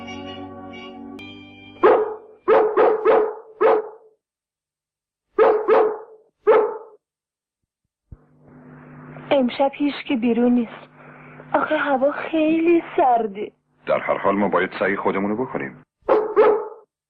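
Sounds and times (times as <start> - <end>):
dogs barking in London at dusk: 1.8 - 4.1, 5.4 - 7.0, 16.0 - 16.9
speech: 9.4 - 10.9, 11.5 - 15.8.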